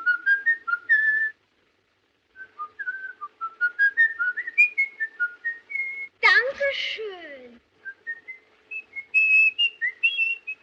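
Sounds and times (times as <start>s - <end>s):
man whistling a melodic tune: 0.0s - 1.4s, 2.4s - 6.1s, 7.8s - 10.6s
person speaking a short phrase: 6.2s - 7.6s.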